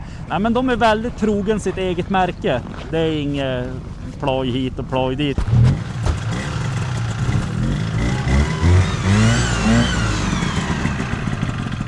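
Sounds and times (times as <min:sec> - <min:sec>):
steady rumbling drone of racing car engines: 0:00.0 - 0:11.8
speech: 0:00.3 - 0:05.7
several racing car engines revving during the first heat of a race: 0:05.4 - 0:11.8.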